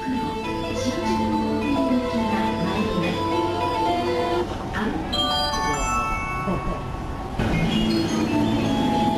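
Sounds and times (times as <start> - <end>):
rumbling trains: 0.0 - 9.1
train station platform arrival and departure chime jingles: 5.1 - 7.1.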